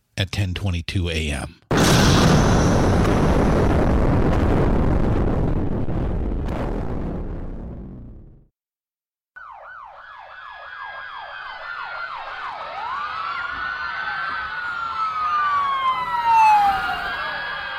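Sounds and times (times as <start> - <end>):
speech: 0.2 - 3.4
thunderous dynamite bomb explosion: 1.7 - 8.5
emergency siren wailing: 9.4 - 17.7.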